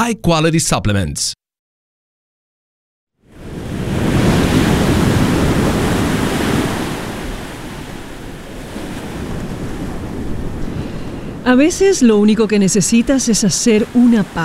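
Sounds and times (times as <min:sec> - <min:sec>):
speech: 0:00.0 - 0:01.4, 0:11.4 - 0:14.4
ocean waves breaking on shore: 0:03.2 - 0:14.4.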